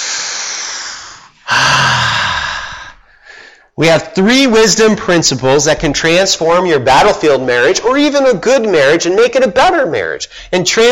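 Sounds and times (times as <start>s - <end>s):
deep breath: 0.0s - 3.8s
speech: 3.8s - 10.9s.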